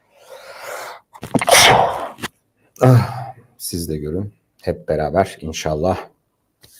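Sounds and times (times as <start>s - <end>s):
single forceful sneeze with sharp breathy inhale: 1.2s - 3.3s
speech: 2.8s - 6.1s.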